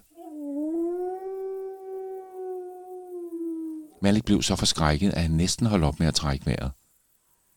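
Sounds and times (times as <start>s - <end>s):
large wolf howling in a forest: 0.0s - 4.0s
speech: 4.0s - 6.8s.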